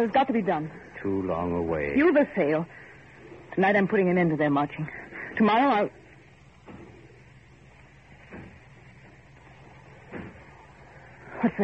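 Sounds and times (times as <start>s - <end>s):
speech: 0.0s - 2.9s, 3.6s - 6.0s, 11.4s - 11.6s
steady low hum: 0.0s - 11.6s
heavy thuds on a factory door: 10.0s - 10.6s.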